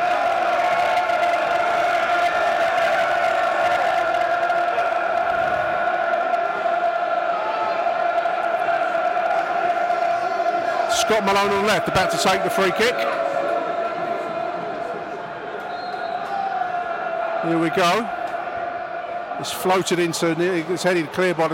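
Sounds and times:
large football stadium crowd roaring and chanting: 0:00.0 - 0:21.5
speech: 0:11.1 - 0:13.2, 0:17.5 - 0:18.2, 0:19.4 - 0:21.5.

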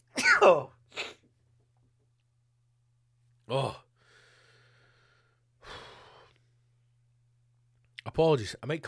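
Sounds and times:
forceful human sneeze: 0:00.1 - 0:01.2
speech: 0:00.4 - 0:01.1, 0:03.5 - 0:03.8, 0:08.2 - 0:08.8.

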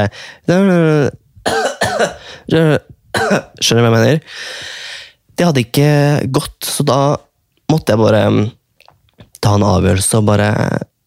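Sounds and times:
speech: 0:00.0 - 0:08.6, 0:09.4 - 0:10.9
person coughing deliberately: 0:01.4 - 0:02.4, 0:03.1 - 0:03.6.

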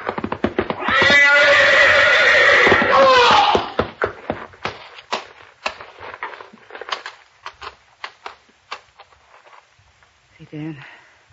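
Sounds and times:
horse hooves clattering and stamping: 0:00.0 - 0:10.2
horse whinnying: 0:00.5 - 0:03.9.

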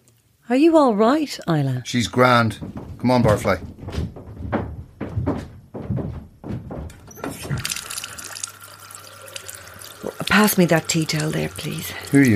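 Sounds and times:
speech: 0:00.5 - 0:04.1, 0:10.4 - 0:12.3
person splashing water on their face: 0:07.1 - 0:12.3.

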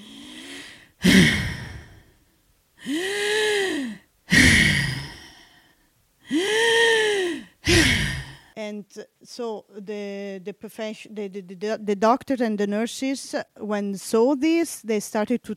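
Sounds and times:
nurse imitating labored breathing of a COVID patient: 0:00.0 - 0:02.2, 0:02.8 - 0:08.6
speech: 0:08.8 - 0:15.5.

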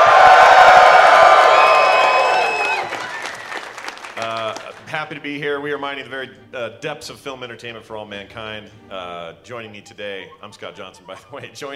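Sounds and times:
live audience yelling, cheering and whooping: 0:00.0 - 0:04.8
steady applause: 0:00.0 - 0:04.9
speech: 0:05.1 - 0:11.7.

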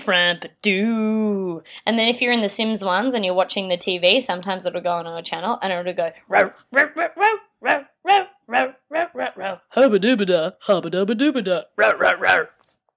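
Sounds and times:
speech: 0:00.0 - 0:12.6
person imitating a dog in a TV ad barking and whining: 0:06.3 - 0:09.8, 0:11.8 - 0:12.6.

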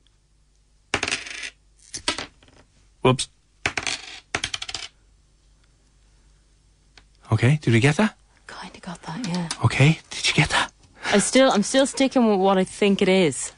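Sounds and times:
coins dropped onto a hard surface: 0:00.9 - 0:02.6, 0:03.6 - 0:05.0
speech: 0:03.0 - 0:03.4, 0:07.4 - 0:08.2, 0:08.8 - 0:13.5.

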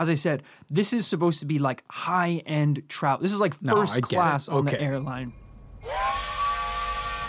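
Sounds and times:
speech: 0:00.0 - 0:06.0
steam train whistle as the train sets off through the Italian countryside: 0:05.8 - 0:07.2.

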